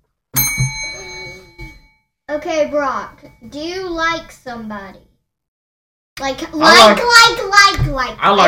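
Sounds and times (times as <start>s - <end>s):
bright bicycle-style bell ringing: 0.4s - 2.1s
speech: 2.4s - 5.1s, 6.2s - 8.4s.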